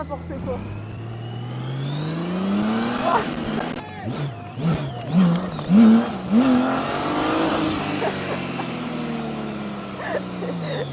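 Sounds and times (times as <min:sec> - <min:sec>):
speech: 0:00.0 - 0:01.0, 0:03.1 - 0:05.8
V6 car engine revving and accelerating: 0:00.0 - 0:10.9
laughter: 0:07.5 - 0:09.2, 0:09.9 - 0:10.9.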